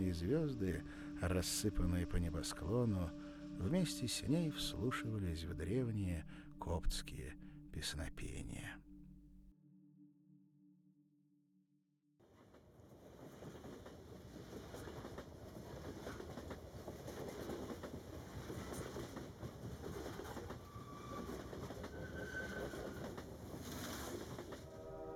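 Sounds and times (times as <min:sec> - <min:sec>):
train rumble inside a moving carriage: 0:00.0 - 0:08.7, 0:12.9 - 0:25.1
speech: 0:00.0 - 0:08.9
low hum: 0:00.0 - 0:11.2
train wheels clacking on rails: 0:13.2 - 0:24.7.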